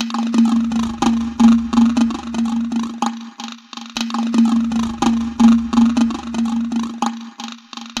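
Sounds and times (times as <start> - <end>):
small drum with chorus effect: 0.0 - 7.9.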